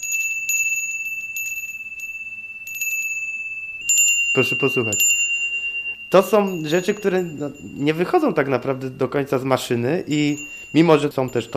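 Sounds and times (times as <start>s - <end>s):
small metal bells jingling: 0.0s - 11.5s
speech: 4.4s - 5.2s, 6.1s - 11.5s.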